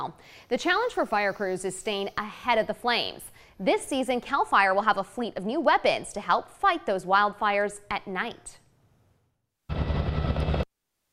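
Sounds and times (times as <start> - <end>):
speech: 0.0 - 8.6
Sikorsky Firehawk helicopter flying: 9.7 - 10.6.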